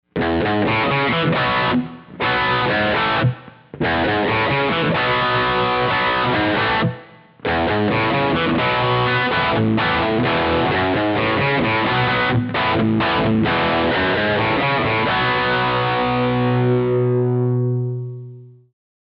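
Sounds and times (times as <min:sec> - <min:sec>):
guitar effects unit rhythm: 0:00.1 - 0:18.6.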